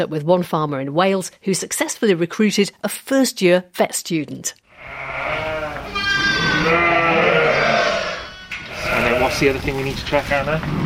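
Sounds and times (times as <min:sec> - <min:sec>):
speech: 0:00.0 - 0:05.2, 0:09.3 - 0:10.8
ewe bleating on a sheep farm while teats are checked for mastitis: 0:04.7 - 0:09.6.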